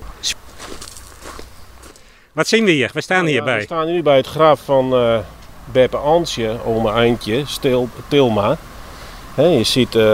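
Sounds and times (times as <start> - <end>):
footsteps walking across a cemetery: 0.0 - 2.2
faint outdoor background: 0.0 - 10.1
speech: 2.4 - 8.7, 9.4 - 10.1.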